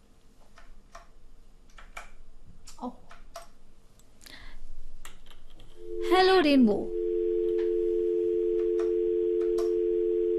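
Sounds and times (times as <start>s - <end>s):
speech: 2.8s - 3.0s, 6.2s - 7.0s
telephone dial tone: 5.8s - 10.3s.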